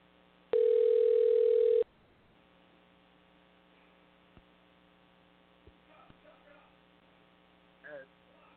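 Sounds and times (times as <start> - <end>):
low mains hum: 0.0 - 8.5
telephone dial tone while placing a call: 0.6 - 1.8.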